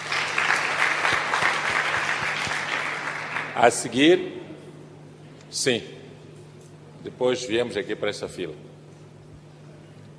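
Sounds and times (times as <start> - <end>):
room full of people clapping: 0.0 - 3.9
speech: 3.6 - 4.4, 5.5 - 6.0, 7.0 - 8.7.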